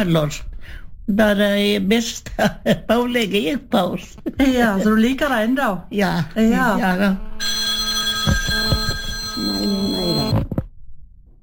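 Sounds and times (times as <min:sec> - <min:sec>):
speech: 0:00.0 - 0:07.6
telephone ringing with a bright electronic tone: 0:07.4 - 0:10.5.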